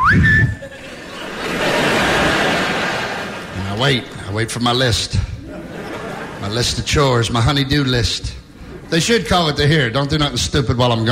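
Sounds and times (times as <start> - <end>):
voice imitating a Navy whistle call in a kitchen: 0.0 - 0.6
laughter: 0.4 - 4.0, 5.2 - 7.3
speech: 3.8 - 5.3, 6.4 - 11.1.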